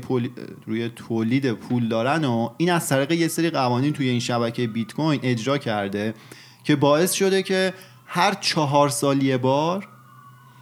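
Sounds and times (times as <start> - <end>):
speech: 0.0 - 9.9
fire engine siren wailing outside: 0.0 - 10.5.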